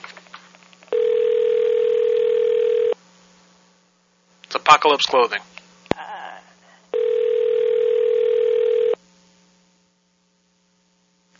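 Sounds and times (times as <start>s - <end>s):
telephone dial tone while dialing a prank call: 0.9s - 3.0s, 7.0s - 9.0s
speech: 4.7s - 5.5s.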